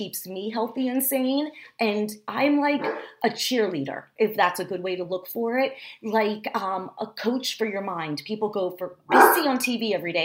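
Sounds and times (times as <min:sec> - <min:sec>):
speech: 0:00.0 - 0:10.2
dog barking: 0:02.8 - 0:03.1, 0:09.1 - 0:09.6.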